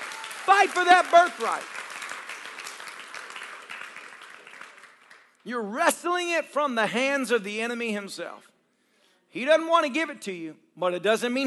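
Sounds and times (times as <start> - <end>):
audience clapping hands: 0.0 - 5.4
speech: 0.5 - 1.7, 5.5 - 8.5, 9.3 - 11.4.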